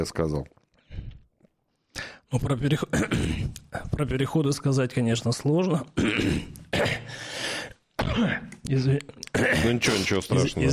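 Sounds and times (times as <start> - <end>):
speech: 0.0 - 0.6, 2.3 - 7.4, 8.2 - 10.7
person coughing: 2.9 - 3.6, 6.0 - 7.2, 8.0 - 8.5, 9.3 - 10.2.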